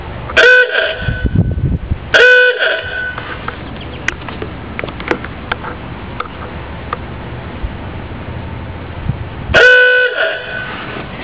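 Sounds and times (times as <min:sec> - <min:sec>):
aooga horn: 0:00.4 - 0:01.5, 0:02.1 - 0:03.4, 0:09.5 - 0:11.0.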